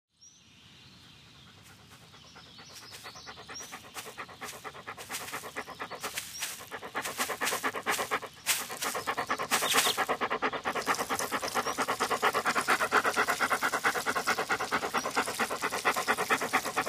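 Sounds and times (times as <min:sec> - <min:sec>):
dog panting while walking on grass: 0:01.4 - 0:16.8
dog rustling through grass: 0:03.7 - 0:10.2.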